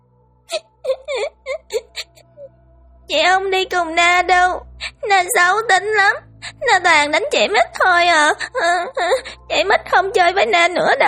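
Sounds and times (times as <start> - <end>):
young girl crying inside a temple: 0.5 - 2.5, 4.6 - 11.0
speech: 3.1 - 11.0.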